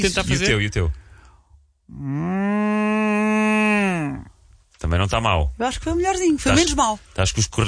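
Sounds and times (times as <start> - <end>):
speech: 0.0 - 1.0, 1.9 - 3.2, 4.0 - 7.6
person imitating a cow with a long low moo: 1.9 - 4.3.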